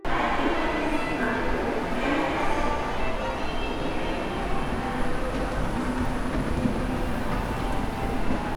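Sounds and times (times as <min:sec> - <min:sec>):
laughter: 0:00.0 - 0:08.5
train station concourse ambience: 0:00.0 - 0:08.5.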